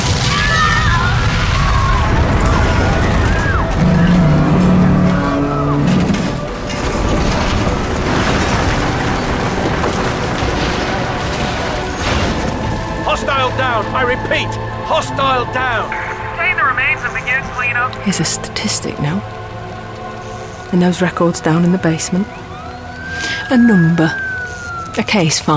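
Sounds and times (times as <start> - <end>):
booming explosions during battle: 0.0 - 13.8
crashing debris: 0.0 - 13.9
chaotic clattering noise: 1.7 - 21.1
speech: 14.1 - 16.0, 17.7 - 19.5, 20.7 - 22.5, 23.2 - 24.2, 25.0 - 25.5.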